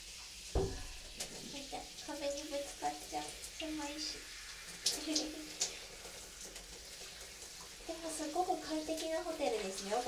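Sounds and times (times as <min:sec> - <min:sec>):
shower water running in a cramped hotel shower stall: 0:00.0 - 0:10.0
speech: 0:02.1 - 0:05.5, 0:08.1 - 0:10.0.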